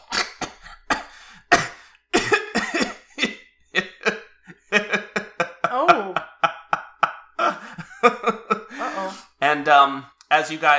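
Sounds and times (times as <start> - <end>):
person voicing a tabletop game character choking: 0.0 - 3.1
laughter: 3.7 - 9.2
speech: 9.8 - 10.7.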